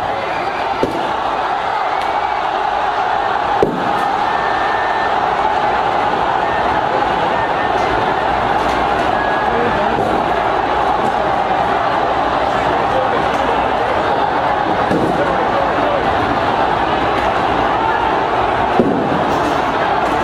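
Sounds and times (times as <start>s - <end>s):
large protest crowd in Hong Kong roaring and shouting: 0.0s - 20.2s
tear gas canisters fired by riot police banging: 3.6s - 4.1s, 18.8s - 19.6s.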